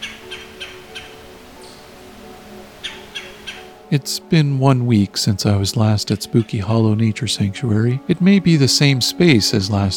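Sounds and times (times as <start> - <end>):
red-bellied woodpecker stuttered guttural call: 0.0 - 1.8, 2.8 - 3.8
speech: 3.9 - 9.9.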